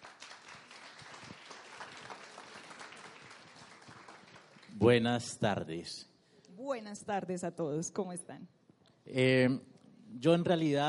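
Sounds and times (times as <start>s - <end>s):
audience applause welcoming a speaker: 0.0s - 5.1s
speech: 4.8s - 6.1s, 6.7s - 10.8s.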